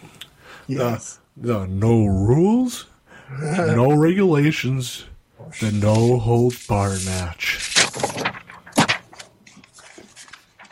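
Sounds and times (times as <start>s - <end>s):
speech: 0.7s - 8.2s
paper notes on the back of a packet rustling and crinkling: 5.6s - 10.7s.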